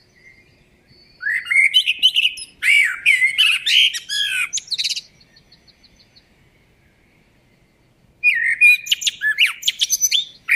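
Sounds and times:
Eurasian blackbird Turdus merula singing: 0:00.0 - 0:10.5.

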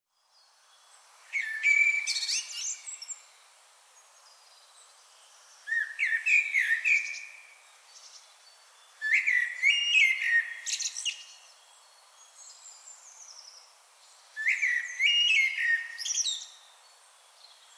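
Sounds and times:
common blackbird singing whistled phrases, Turdus merula: 0:01.4 - 0:03.1, 0:05.7 - 0:07.4, 0:09.0 - 0:11.3, 0:14.4 - 0:16.6.

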